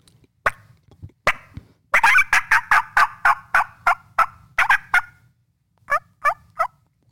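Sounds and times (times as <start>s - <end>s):
wild turkey hen yelping: 2.0s - 5.2s, 5.9s - 6.8s.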